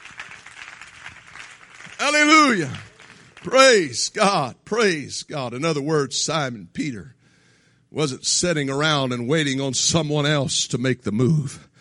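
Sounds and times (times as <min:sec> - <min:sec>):
crowd clapping in praise: 0:00.0 - 0:04.1
speech: 0:02.0 - 0:02.8, 0:03.4 - 0:07.2, 0:07.9 - 0:11.7.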